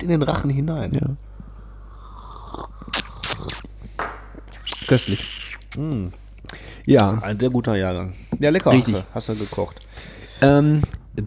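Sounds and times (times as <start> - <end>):
speech: 0.0 - 1.3, 4.9 - 11.2
quiet hum: 0.0 - 11.2
slurping sips of coffee: 1.7 - 6.7, 8.6 - 10.5.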